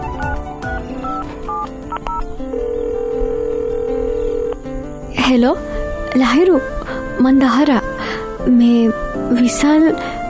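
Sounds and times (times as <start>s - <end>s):
mobile phone keypad tones dialing a number: 0.2s - 4.6s
long steady mobile phone tone: 0.7s - 4.6s
speech: 5.3s - 10.2s.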